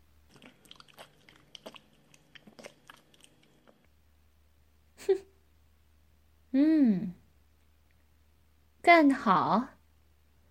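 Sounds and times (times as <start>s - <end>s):
crunchy food being bitten and chewed: 0.2s - 3.9s
speech: 5.0s - 5.3s, 6.6s - 7.2s, 8.9s - 9.7s.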